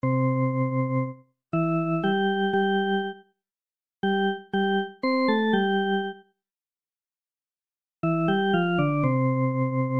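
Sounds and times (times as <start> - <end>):
music: 0.0 - 3.4, 4.0 - 6.4, 8.0 - 9.9.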